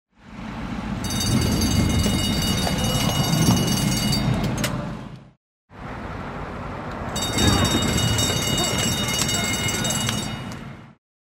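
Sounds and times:
bell ringing at a horse race: 0:01.0 - 0:04.7, 0:07.2 - 0:10.6.

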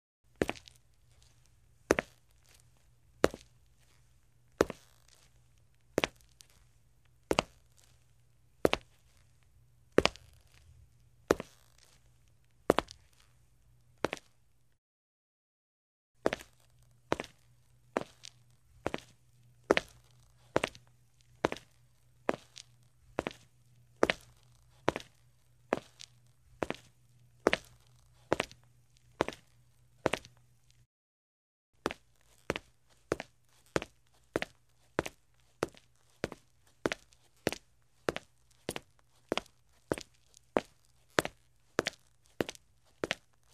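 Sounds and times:
footsteps in shoes on a concrete floor: 0:00.4 - 0:01.2, 0:01.9 - 0:02.2, 0:03.2 - 0:03.5, 0:04.6 - 0:05.2, 0:07.3 - 0:07.9, 0:08.6 - 0:09.0, 0:10.0 - 0:10.6, 0:11.3 - 0:12.0, 0:12.7 - 0:13.2, 0:14.0 - 0:14.3, 0:16.2 - 0:17.3, 0:18.0 - 0:19.1, 0:19.7 - 0:20.8, 0:21.4 - 0:21.7, 0:22.3 - 0:28.6, 0:29.2 - 0:30.4, 0:31.8 - 0:43.3.

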